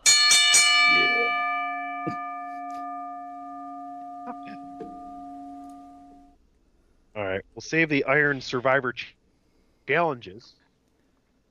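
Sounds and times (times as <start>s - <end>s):
bell struck and ringing: 0.0s - 6.4s
speech: 2.0s - 2.2s, 7.6s - 9.2s, 9.9s - 10.6s.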